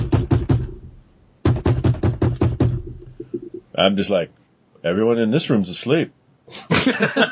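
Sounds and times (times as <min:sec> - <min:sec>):
loud knocking on a hotel room door: 0:00.0 - 0:03.6
speech: 0:03.8 - 0:07.3
laughter: 0:06.5 - 0:07.3.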